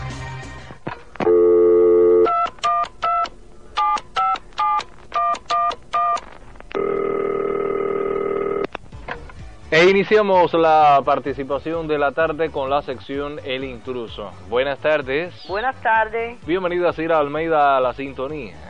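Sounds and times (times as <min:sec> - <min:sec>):
telephone dial tone: 0:01.2 - 0:06.2, 0:06.8 - 0:08.7
telephone keypad beeps at shifting pitches: 0:02.2 - 0:06.2
speech: 0:09.7 - 0:18.6.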